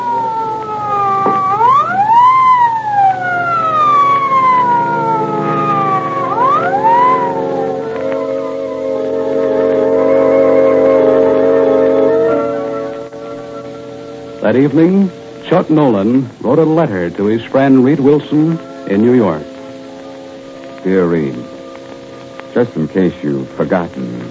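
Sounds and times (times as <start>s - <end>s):
ambulance siren wailing: 0.0s - 24.2s
low engine rumble: 0.0s - 24.2s
speech: 14.5s - 19.5s, 20.8s - 21.5s, 22.6s - 24.2s.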